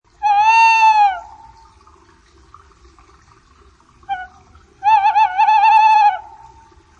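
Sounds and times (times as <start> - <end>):
tawny owl calling: 0.2 - 1.5, 4.1 - 6.5.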